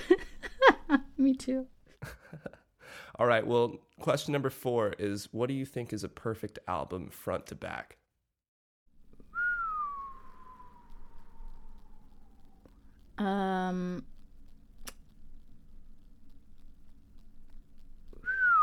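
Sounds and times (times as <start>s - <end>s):
speech: 1.2s - 2.4s, 3.2s - 8.0s, 13.2s - 14.1s
person whistling: 9.3s - 12.0s, 18.2s - 18.6s.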